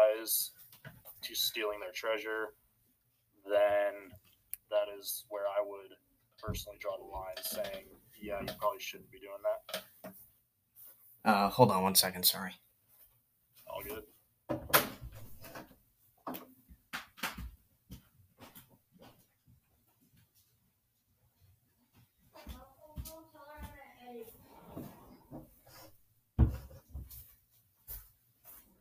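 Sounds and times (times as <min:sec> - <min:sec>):
speech: 0:00.2 - 0:00.5, 0:01.3 - 0:02.6, 0:03.4 - 0:10.2, 0:11.2 - 0:12.6, 0:13.7 - 0:14.9
door opening and closing: 0:14.5 - 0:15.7.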